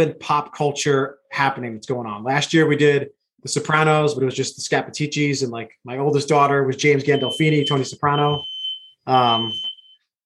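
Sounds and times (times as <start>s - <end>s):
speech: 0.0s - 9.7s
smoke alarm beeping in a house: 7.1s - 10.1s.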